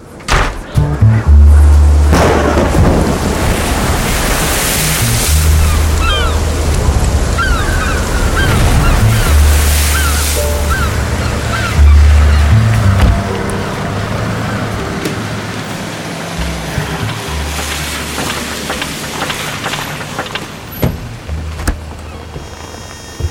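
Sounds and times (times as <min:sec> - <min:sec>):
stormy wind roaring: 0:00.0 - 0:22.4
deep rolling rumbles of thunder: 0:01.9 - 0:13.3.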